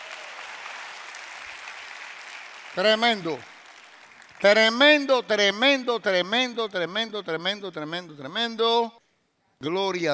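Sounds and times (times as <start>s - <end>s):
audience applause: 0.0s - 4.6s
speech: 2.8s - 3.5s, 4.4s - 9.0s, 9.6s - 10.1s.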